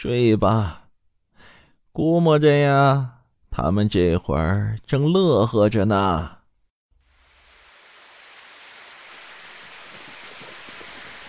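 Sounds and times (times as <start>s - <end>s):
speech: 0.0s - 0.8s, 2.0s - 6.4s
rain falling: 7.0s - 11.2s.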